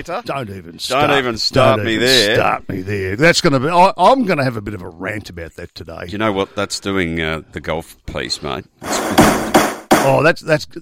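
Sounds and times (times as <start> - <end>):
speech: 0.0 - 9.3, 10.0 - 10.7
wooden gavel banging: 8.9 - 10.2.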